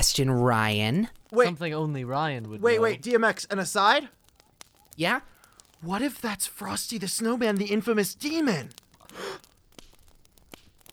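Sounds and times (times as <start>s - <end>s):
speech: 0.0s - 4.2s, 5.0s - 9.5s
breathy gasp: 9.0s - 9.6s.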